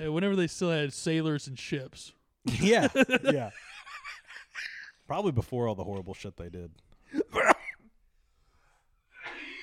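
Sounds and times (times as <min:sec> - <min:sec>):
speech: 0:00.0 - 0:03.7, 0:05.1 - 0:07.5
sharp explosive coughs: 0:07.1 - 0:07.9.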